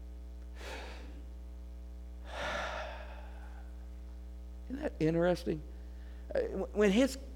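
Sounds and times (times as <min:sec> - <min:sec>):
steady low electrical hum: 0:00.0 - 0:07.3
person taking a deep airy breath: 0:00.6 - 0:01.2, 0:02.3 - 0:03.8
speech: 0:04.8 - 0:05.7, 0:06.3 - 0:07.3.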